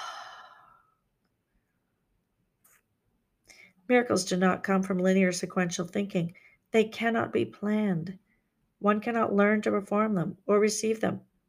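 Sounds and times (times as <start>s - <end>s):
deep slow exhalation during a guided meditation: 0.0s - 1.0s
speech: 3.9s - 8.2s, 8.8s - 11.3s.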